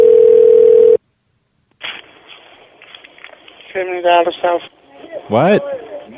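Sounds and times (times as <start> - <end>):
telephone call line steady single tone: 0.0 - 1.0
speech: 4.0 - 5.8.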